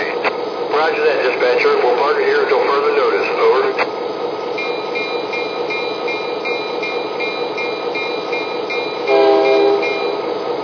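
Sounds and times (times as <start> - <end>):
local freight train rumbling: 0.0 - 10.6
speech: 0.8 - 3.8
freight train horn blast: 9.1 - 10.2.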